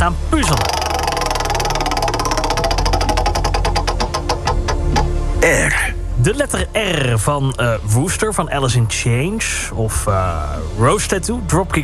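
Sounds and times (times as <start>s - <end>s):
speech: 0.0s - 0.8s, 5.4s - 11.8s
large studio alphabet wheel lubricated with WD-40 clicking as it spins: 0.4s - 5.1s.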